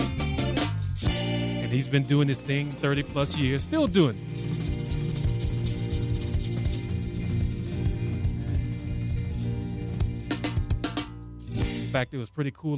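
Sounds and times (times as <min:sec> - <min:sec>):
lively zydeco song: 0:00.0 - 0:12.1
thumping bass line: 0:00.0 - 0:12.1
bright continuous scraping rhythm: 0:00.0 - 0:12.2
speech: 0:01.7 - 0:04.3, 0:12.0 - 0:12.7
sharp percussive hits: 0:04.2 - 0:12.0.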